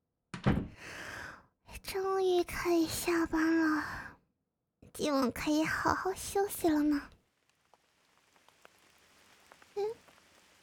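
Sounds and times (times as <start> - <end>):
speech: 2.4 - 4.0, 5.0 - 7.2
soft steady rain patter: 5.0 - 10.6
scattered light drip ticks: 7.4 - 10.6.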